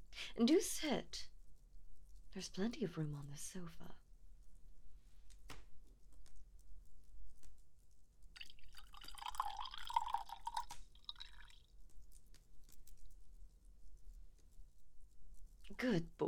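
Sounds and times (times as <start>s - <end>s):
speech: 0.4s - 1.3s, 2.3s - 4.0s, 15.8s - 16.2s
wine pouring into a glass: 8.4s - 11.6s.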